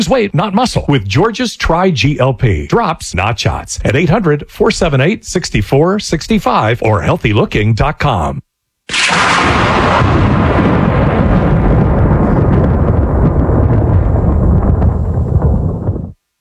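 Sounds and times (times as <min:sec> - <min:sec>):
speech: 0:00.0 - 0:10.4
loud thunderclap rolling into sustained rumble: 0:08.9 - 0:16.2.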